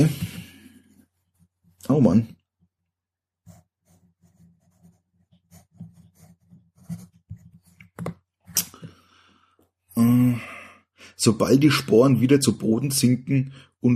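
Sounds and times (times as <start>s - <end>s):
speech: 0.0s - 0.2s, 1.9s - 2.4s, 11.2s - 13.9s
pen scratching on note paper: 3.4s - 8.1s.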